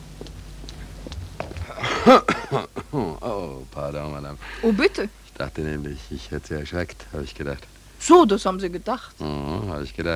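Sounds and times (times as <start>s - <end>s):
faint shuffling: 0.1s - 2.1s
woman coughing: 1.7s - 2.9s
speech: 2.0s - 2.3s, 3.9s - 10.1s.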